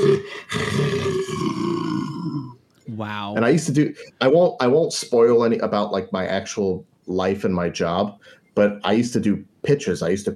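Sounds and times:
person imitating a lion roar into a metal waste bin: 0:00.0 - 0:03.4
speech: 0:00.1 - 0:01.0, 0:02.9 - 0:10.3.

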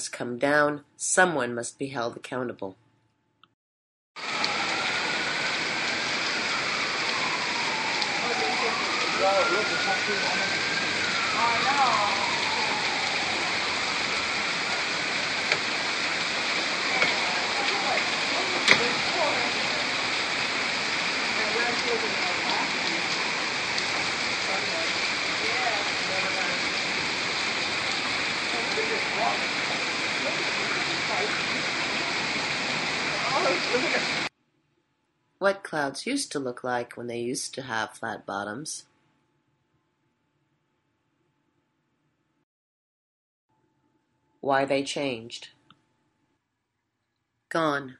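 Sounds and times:
speech: 0:00.0 - 0:02.8, 0:09.2 - 0:12.2, 0:33.4 - 0:34.3, 0:35.4 - 0:38.9, 0:44.4 - 0:45.6, 0:47.5 - 0:47.9
heavy rain pouring: 0:04.2 - 0:34.3.

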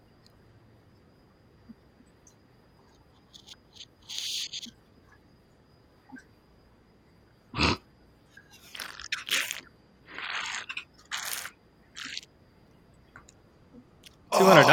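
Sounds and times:
slurping a drink: 0:08.6 - 0:12.2
speech: 0:14.5 - 0:14.7.

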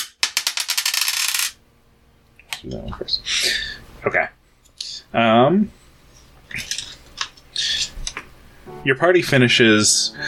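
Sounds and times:
dice clattering across a hard surface: 0:00.0 - 0:01.6
speech: 0:02.6 - 0:04.4, 0:05.1 - 0:05.8, 0:08.8 - 0:10.2.

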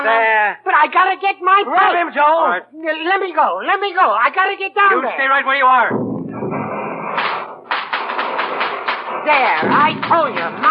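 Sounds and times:
speech: 0:00.0 - 0:06.0, 0:09.3 - 0:10.6
fireworks exploding in basement: 0:06.3 - 0:10.6.

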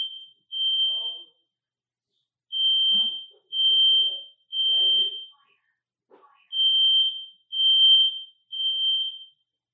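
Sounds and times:
fire alarm beeping: 0:00.0 - 0:01.5, 0:02.5 - 0:05.4, 0:06.5 - 0:09.6.

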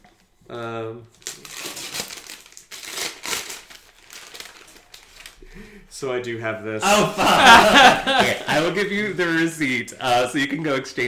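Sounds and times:
speech: 0:00.5 - 0:01.2, 0:05.6 - 0:11.0
wrapping paper crinkling as a wrapped gift is unwrapped: 0:01.1 - 0:05.5
laughter: 0:06.8 - 0:09.2.

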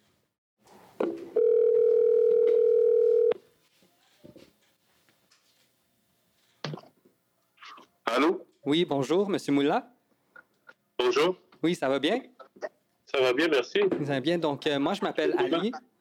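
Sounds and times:
telephone dial tone while placing a call: 0:01.4 - 0:03.4
speech: 0:08.7 - 0:10.0, 0:11.1 - 0:12.3, 0:13.1 - 0:15.9.

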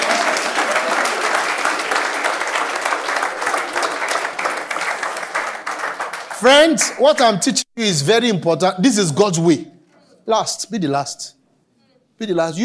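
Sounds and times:
large audience applauding for an artist and his singers: 0:00.0 - 0:07.0
speech: 0:06.4 - 0:09.7, 0:10.3 - 0:11.4, 0:12.2 - 0:12.6.

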